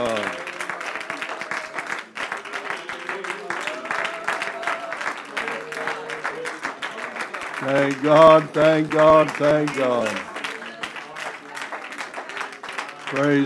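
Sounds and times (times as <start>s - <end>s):
audience applauding in a large room: 0.0s - 13.4s
speech: 7.6s - 10.3s, 13.1s - 13.4s
voices calling out: 7.6s - 10.3s.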